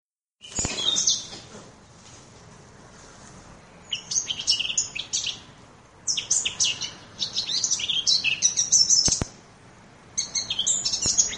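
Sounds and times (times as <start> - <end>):
Eurasian blackcap song with high rapid chattering and warbled notes: 0.4 - 1.5, 3.7 - 9.4, 10.1 - 11.3.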